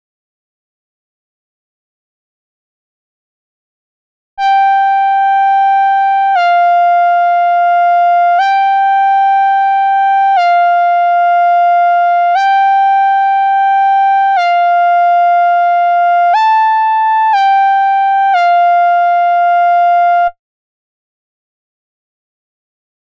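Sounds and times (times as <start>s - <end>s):
analog synthesizer: 4.4s - 20.4s.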